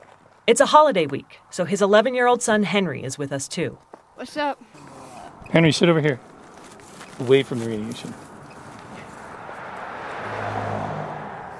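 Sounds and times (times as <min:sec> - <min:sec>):
road and wind noise on a mountain canyon road: 0:00.0 - 0:11.5
speech: 0:00.5 - 0:04.8, 0:05.5 - 0:06.3, 0:07.2 - 0:08.2
car engine speeding up a steep mountain canyon road: 0:04.6 - 0:11.5.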